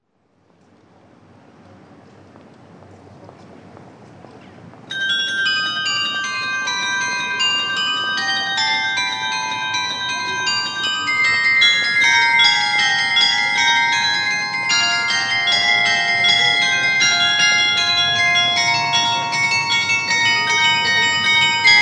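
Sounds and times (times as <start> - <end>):
carillon bells: 4.9 - 21.8.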